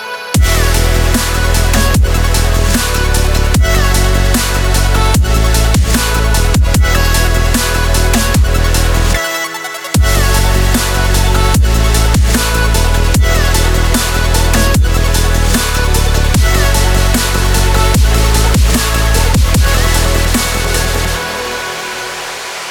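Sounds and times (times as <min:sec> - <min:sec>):
powerful intense dubstep loop: 0:00.4 - 0:22.6.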